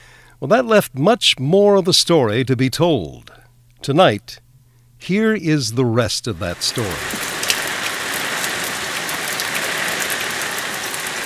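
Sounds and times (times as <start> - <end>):
speech: 0.4 - 4.4, 5.0 - 7.2
steady rain falling in foggy cold weather: 6.3 - 11.2.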